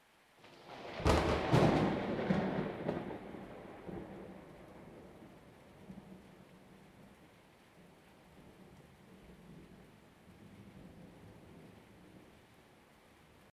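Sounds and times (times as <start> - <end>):
huge thunder crack: 0.5 - 5.3.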